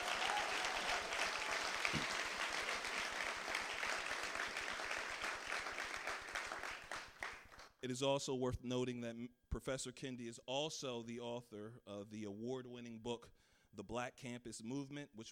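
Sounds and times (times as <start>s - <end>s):
audience applause: 0.0s - 7.7s
speech: 7.8s - 15.3s.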